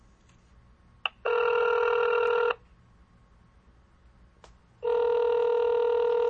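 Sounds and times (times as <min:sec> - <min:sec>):
telephone ringing for an incoming call: 0:01.2 - 0:02.6, 0:04.8 - 0:06.2.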